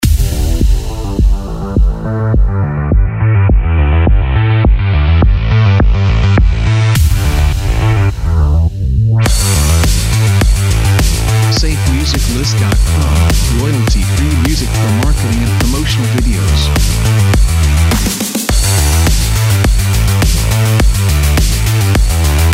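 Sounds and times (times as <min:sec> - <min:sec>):
sport electro music: 0:00.0 - 0:22.5.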